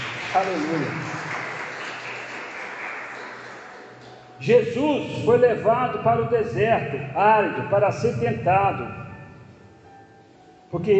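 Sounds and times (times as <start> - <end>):
large crowd applauding in a large room: 0.0 - 4.4
speech: 0.4 - 1.2, 4.4 - 9.0, 10.7 - 10.9.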